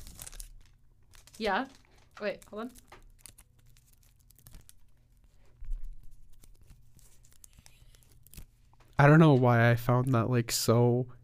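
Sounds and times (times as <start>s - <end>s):
Band-Aid wrapper crinkling and tearing as it is opened: 0.0s - 8.8s
speech: 1.4s - 2.9s, 9.0s - 11.2s.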